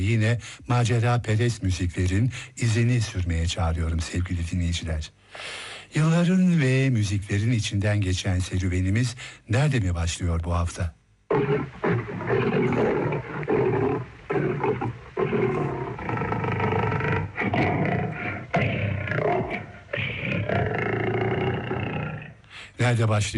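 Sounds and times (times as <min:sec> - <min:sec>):
speech: 0:00.0 - 0:11.8, 0:22.9 - 0:23.3
lion roaring and growling: 0:11.3 - 0:22.4.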